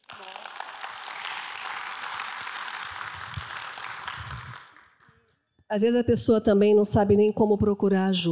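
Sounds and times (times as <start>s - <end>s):
applause from a small group: 0.0s - 5.2s
speech: 5.7s - 8.2s.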